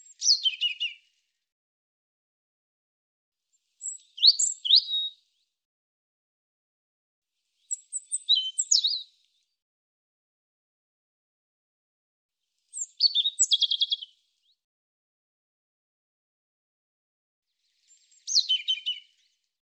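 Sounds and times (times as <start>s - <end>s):
European robin singing high sweet phrases: 0.0s - 1.0s, 3.8s - 5.1s, 7.7s - 9.1s, 12.7s - 14.6s, 17.8s - 19.2s.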